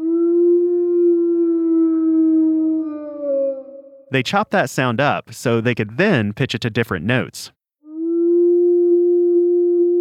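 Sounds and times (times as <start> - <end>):
wolf howl: 0.0 - 3.9, 7.9 - 9.9
speech: 4.1 - 7.6.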